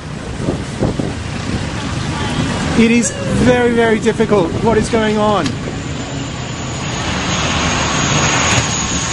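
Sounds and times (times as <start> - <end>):
waves slapping the hull of a boat in rough seas: 0.0 - 6.6
steady roaring wind across the microphone in rough seas: 0.0 - 9.1
speech: 2.8 - 5.7.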